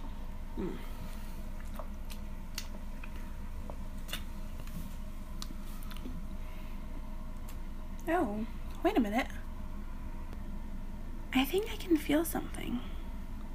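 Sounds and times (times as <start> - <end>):
speech: 0.6 - 1.0, 8.1 - 9.4, 11.5 - 13.0
person drinking water with wet gulps and swallows: 1.5 - 2.8.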